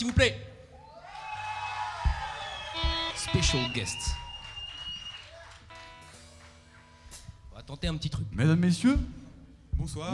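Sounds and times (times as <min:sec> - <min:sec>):
speech: 0:00.0 - 0:00.5, 0:03.3 - 0:04.2, 0:07.7 - 0:09.2, 0:09.8 - 0:10.1
crowd applauding: 0:00.0 - 0:07.4
crowd cheering and whooping: 0:00.7 - 0:07.1
single low thump: 0:02.0 - 0:05.1, 0:07.1 - 0:10.1.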